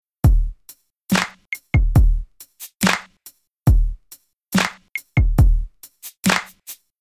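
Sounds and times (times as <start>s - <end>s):
RnB rhythm: 0.4s - 3.3s, 3.9s - 6.8s.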